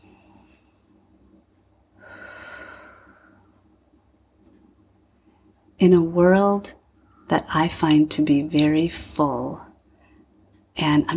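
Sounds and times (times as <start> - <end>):
hum: 0.0 - 11.1
deep breath: 2.0 - 3.6
speech: 5.8 - 9.7, 10.8 - 11.1.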